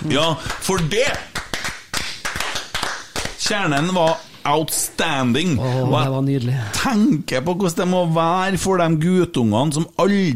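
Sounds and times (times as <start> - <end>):
speech: 0.0 - 1.3, 3.5 - 10.3
hosts clapping applause: 0.0 - 4.4.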